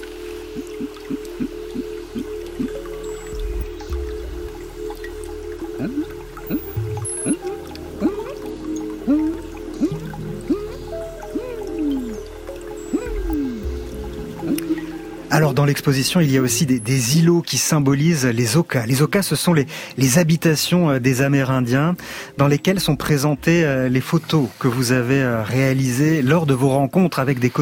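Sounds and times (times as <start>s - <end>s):
dripping water in the Amazon rainforest: 0.0s - 27.6s
soft low thuds: 3.4s - 5.6s
speech: 15.7s - 27.6s.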